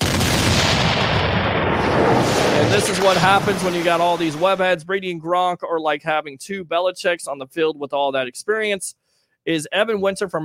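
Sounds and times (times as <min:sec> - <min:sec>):
booming cannon fire barrage: 0:00.0 - 0:04.5
speech: 0:02.7 - 0:10.4.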